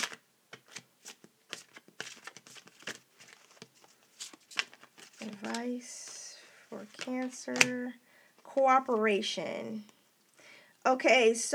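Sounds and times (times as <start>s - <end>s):
tarot cards being shuffled: 0.0s - 9.0s
speech: 5.2s - 6.0s, 6.7s - 9.9s, 10.8s - 11.5s.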